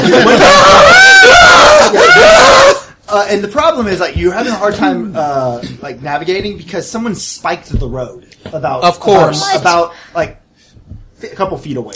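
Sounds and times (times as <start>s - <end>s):
laughter: 0.0s - 0.8s
person screaming: 0.2s - 2.8s
speech: 3.3s - 10.4s, 11.2s - 11.9s.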